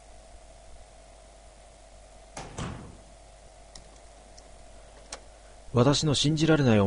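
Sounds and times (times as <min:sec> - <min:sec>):
steady low hum: 0:00.0 - 0:06.8
heavy door being closed: 0:02.4 - 0:03.2
speech: 0:05.7 - 0:06.8.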